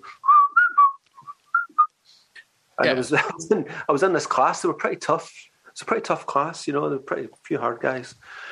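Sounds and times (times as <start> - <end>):
person whistling a short bouncy pop tune: 0.0 - 1.9
laughter: 2.8 - 4.0
speech: 2.8 - 8.5.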